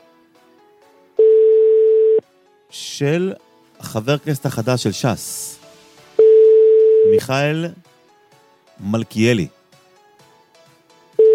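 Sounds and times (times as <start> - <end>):
telephone ringback tone on an unanswered call: 1.2 - 2.2, 6.2 - 7.2
speech: 2.7 - 5.6, 7.0 - 7.9, 8.8 - 9.6.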